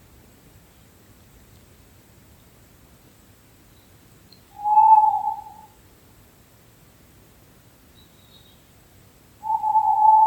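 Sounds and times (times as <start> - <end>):
owl hooting: 4.5 - 5.8, 9.4 - 10.2.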